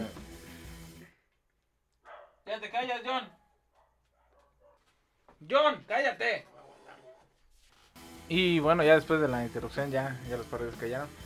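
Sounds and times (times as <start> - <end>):
dog barking and growling: 2.0 - 2.5, 3.3 - 5.0, 6.5 - 7.4
speech: 2.5 - 3.4, 5.4 - 6.5, 8.3 - 11.2.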